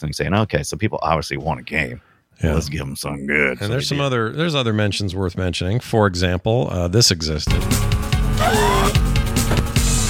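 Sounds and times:
speech: 0.0s - 9.0s
video-game car engine revving and droning as the car races: 8.4s - 9.0s.

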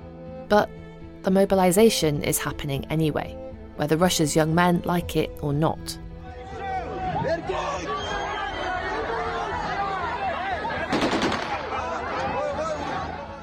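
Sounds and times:
speech: 0.5s - 6.0s, 7.2s - 8.2s
protest crowd shouting and chatter: 6.3s - 13.4s
police gunshots fired into the air at a protest: 10.9s - 11.9s.

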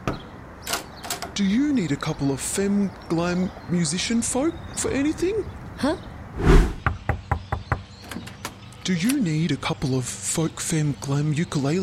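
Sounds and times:
speech: 1.4s - 6.6s, 8.9s - 11.8s
knocking on a house door: 6.8s - 7.9s.

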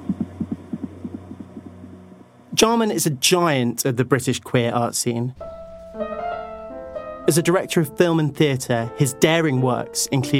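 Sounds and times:
irregular heartbeat: 0.0s - 2.1s
steady low electrical hum: 0.0s - 10.3s
speech: 2.6s - 5.5s, 7.3s - 10.3s.

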